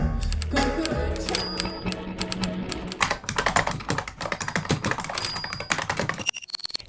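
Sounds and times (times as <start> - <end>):
rapid typing on keys: 0.2 - 6.8
brief high dings: 1.2 - 2.0.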